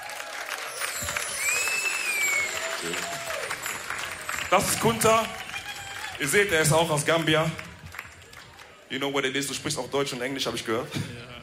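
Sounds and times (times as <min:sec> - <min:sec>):
audience applause greeting a performer coming onto a stage: 0:00.0 - 0:09.0
whistle: 0:00.6 - 0:06.2
speech: 0:02.8 - 0:03.1, 0:04.5 - 0:05.4, 0:06.2 - 0:07.7, 0:08.9 - 0:11.2.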